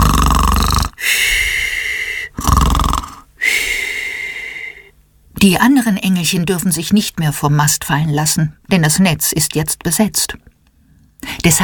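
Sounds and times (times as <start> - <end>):
loud snoring with whistling exhales: 0.0 - 1.6, 2.2 - 3.2
speech: 5.4 - 10.6, 11.2 - 11.6.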